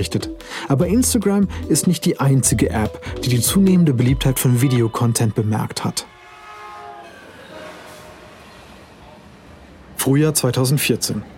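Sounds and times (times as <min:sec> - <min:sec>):
speech: 0:00.0 - 0:06.2, 0:10.0 - 0:11.3
horn-like tonal blast: 0:04.4 - 0:09.5
train rumbling along the rails: 0:05.4 - 0:11.3.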